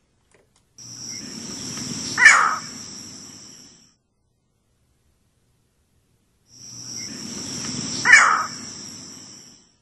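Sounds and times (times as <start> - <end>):
low outdoor rumble: 0.0 - 9.8
buzzing insects: 0.8 - 3.9, 6.5 - 9.8
harsh abrupt green heron calls: 2.1 - 2.8, 8.0 - 8.7.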